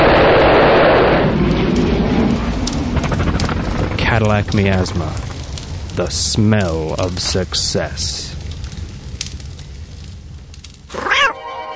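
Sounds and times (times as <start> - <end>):
steady low rumbling background: 0.0 - 10.9
speech: 4.2 - 5.3, 6.0 - 8.3
cat meowing: 10.9 - 11.4.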